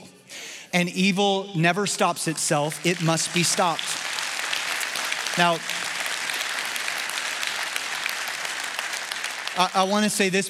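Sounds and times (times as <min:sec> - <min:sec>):
speech: 0:00.7 - 0:04.0, 0:05.4 - 0:05.8, 0:09.6 - 0:10.4
audience clapping in steady applause: 0:02.6 - 0:10.4.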